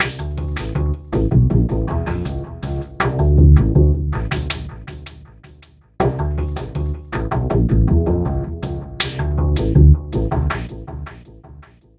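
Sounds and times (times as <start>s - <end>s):
remixed acoustic bass: 0.0s - 5.2s, 6.1s - 11.2s.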